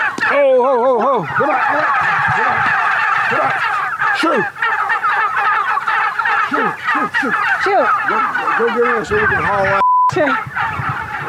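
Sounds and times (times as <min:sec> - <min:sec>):
large flock of heritage breed wild turkeys gobbling on a pasture: 0:00.0 - 0:11.2
speech: 0:00.6 - 0:02.7, 0:03.3 - 0:04.6, 0:07.0 - 0:10.6.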